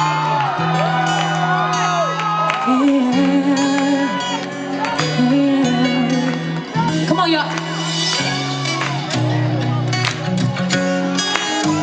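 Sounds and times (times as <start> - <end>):
large audience screaming and whooping: 0.0 - 7.0, 7.6 - 10.0
scattered clapping: 0.1 - 11.8.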